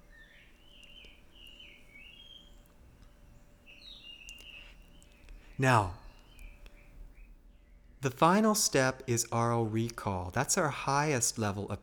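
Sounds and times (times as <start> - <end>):
jungle bird calling outdoors in warbling chirps and trills: 0.0 - 8.6
low steady hum of ambient noise: 0.0 - 11.8
speech: 5.6 - 6.0, 8.0 - 11.8.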